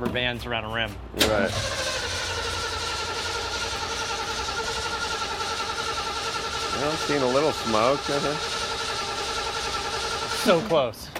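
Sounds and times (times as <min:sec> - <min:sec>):
speech: 0:00.1 - 0:01.9, 0:06.8 - 0:08.5, 0:10.4 - 0:11.1
car engine with an Edelbrock carburetor cranking, trying to start: 0:01.2 - 0:10.8.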